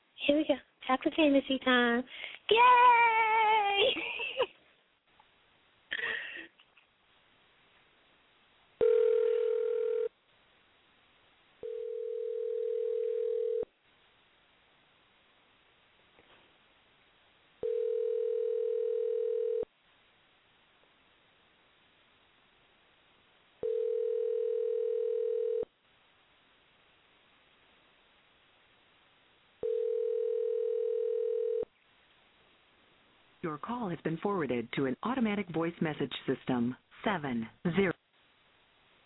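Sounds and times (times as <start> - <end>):
speech: 0.3 - 3.2, 3.8 - 4.5, 33.5 - 38.0
telephone tones while a call is being placed: 8.8 - 10.1, 11.6 - 13.7, 17.6 - 19.7, 23.6 - 25.7, 29.6 - 31.7.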